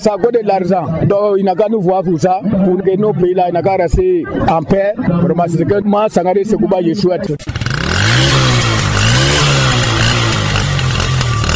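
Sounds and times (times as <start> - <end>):
speech: 0.0 - 7.6
motorcycle engine revving in Côte d'Ivoire: 7.2 - 11.5.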